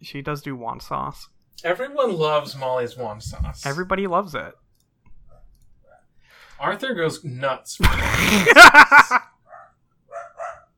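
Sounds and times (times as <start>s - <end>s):
speech: 0.0s - 4.6s, 6.6s - 9.3s
dog barking: 5.3s - 6.1s, 9.4s - 10.7s
laughter: 7.8s - 9.4s.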